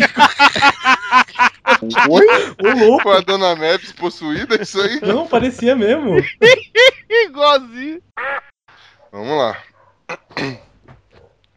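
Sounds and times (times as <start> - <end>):
laughter: 0.0 - 7.6
speech: 2.8 - 9.7
dog barking in the background: 9.0 - 10.0, 10.6 - 11.4.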